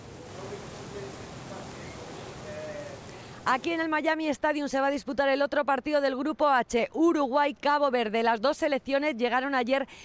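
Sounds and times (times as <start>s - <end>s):
heavy rain pouring during a thunderstorm: 0.0s - 4.0s
speech: 3.5s - 10.0s.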